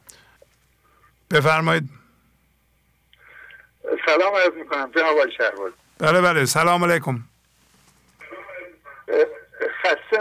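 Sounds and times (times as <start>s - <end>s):
speech: 1.3s - 2.0s, 4.1s - 7.3s, 9.1s - 10.2s
television voices in background of a phone call: 3.2s - 7.3s, 8.2s - 10.2s.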